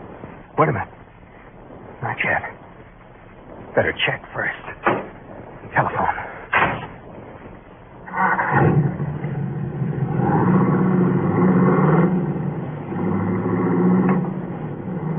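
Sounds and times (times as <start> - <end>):
speech: 0.6 - 1.0, 2.0 - 2.6, 3.7 - 5.0
car engine revving and driving away: 8.0 - 15.1.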